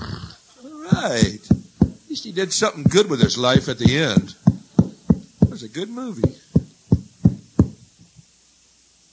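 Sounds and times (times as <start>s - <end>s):
faint shuffling: 0.5s - 8.3s
firm knocks on a hotel room door: 0.9s - 2.0s, 2.9s - 5.6s, 6.2s - 7.8s
speech: 2.2s - 4.4s, 5.8s - 6.4s.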